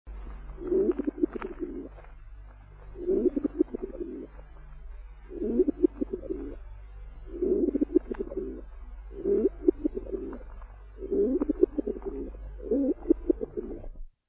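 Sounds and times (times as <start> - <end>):
pigeons: 0.6 - 2.0, 3.0 - 4.3, 5.3 - 6.6, 7.3 - 13.9.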